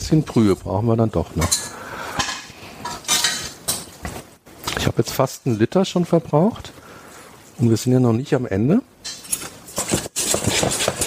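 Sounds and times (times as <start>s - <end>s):
speech: 0.1s - 1.8s, 4.8s - 6.8s, 7.6s - 8.9s
metal cookware clanking and scraping as a frying pan is set down to heat for shrimp: 1.4s - 4.0s, 9.0s - 9.9s.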